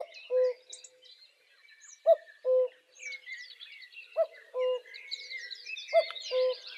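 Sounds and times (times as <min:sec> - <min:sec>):
cuckoo giving falling cu-coo pairs: 0:00.0 - 0:00.8, 0:02.0 - 0:03.2, 0:04.2 - 0:05.0, 0:05.9 - 0:06.7
lively twittering of other birds: 0:00.0 - 0:06.7.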